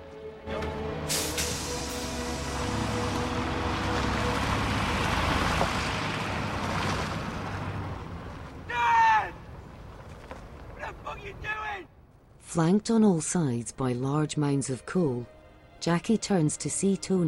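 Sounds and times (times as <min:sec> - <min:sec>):
bus engine rumbling as the bus pulls away: 0:00.4 - 0:11.4
speech: 0:12.6 - 0:17.2.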